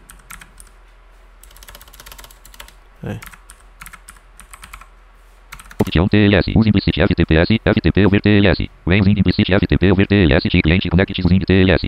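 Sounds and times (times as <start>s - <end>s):
computer keyboard typing as an FTP password is typed in: 0.0s - 0.8s, 1.4s - 4.9s, 5.5s - 6.0s
low steady hum: 0.0s - 11.8s
speech: 3.0s - 3.4s, 6.0s - 11.8s.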